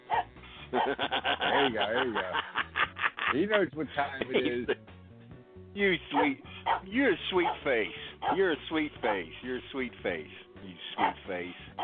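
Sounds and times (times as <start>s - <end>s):
dog yipping and barking: 0.0s - 0.9s
laughter: 0.4s - 4.9s
speech: 0.7s - 2.6s, 3.3s - 4.9s, 5.8s - 11.8s.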